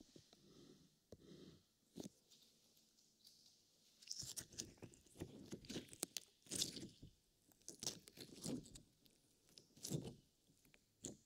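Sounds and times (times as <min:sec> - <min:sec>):
wet sticky slime squishing and squelching: 0:04.1 - 0:11.2.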